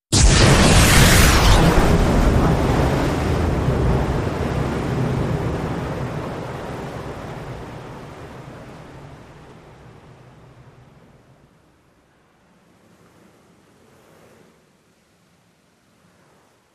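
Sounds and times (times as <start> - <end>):
depth charge surface explosion: 0.1 - 7.0.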